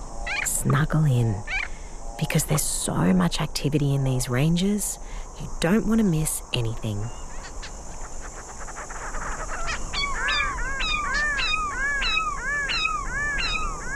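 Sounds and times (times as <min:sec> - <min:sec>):
background hiss: 0:00.0 - 0:13.9
speech: 0:00.6 - 0:01.5, 0:02.2 - 0:07.2
grey-crowned babbler calling in Australian desert mountain ranges: 0:07.1 - 0:13.9.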